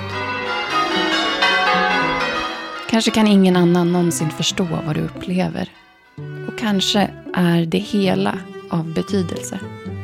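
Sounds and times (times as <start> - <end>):
church bell ringing in a metallic peal: 0.0 - 6.8
speech: 3.0 - 9.8.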